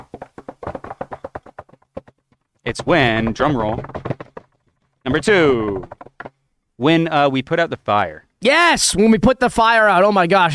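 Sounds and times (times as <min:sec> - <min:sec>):
light knocks on a wooden surface: 0:00.0 - 0:06.4
speech: 0:02.6 - 0:04.0, 0:05.1 - 0:06.0, 0:06.8 - 0:10.5.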